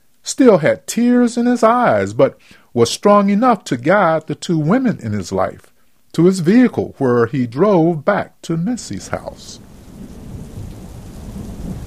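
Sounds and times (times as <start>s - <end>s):
heavy rain at night: 0.0s - 11.8s
speech: 0.4s - 9.7s
thunder rolling through a stormy night: 8.8s - 11.8s.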